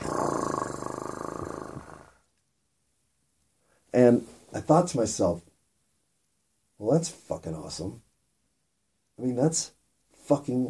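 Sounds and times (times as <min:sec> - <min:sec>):
domestic female cat purring with a deep steady rumble: 0:00.0 - 0:02.2
speech: 0:04.0 - 0:05.5, 0:06.8 - 0:08.0, 0:09.2 - 0:10.6.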